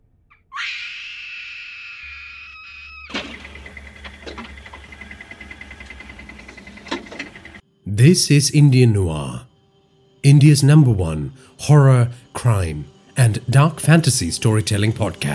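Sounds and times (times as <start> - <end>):
woman screaming in terror in a cave: 0.5 - 3.1
faint clicks: 3.1 - 7.6
dim hollow rumbling cave ambience: 3.2 - 7.6
speech: 8.0 - 9.5, 10.2 - 15.3.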